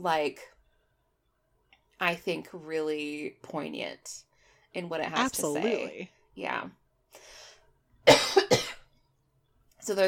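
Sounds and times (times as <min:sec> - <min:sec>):
speech: 0:00.0 - 0:00.6, 0:02.0 - 0:07.4, 0:09.8 - 0:10.0
person coughing with harsh bursts: 0:08.1 - 0:08.9.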